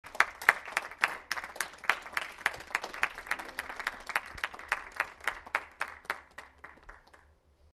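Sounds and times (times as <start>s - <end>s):
applause: 0.0s - 7.4s.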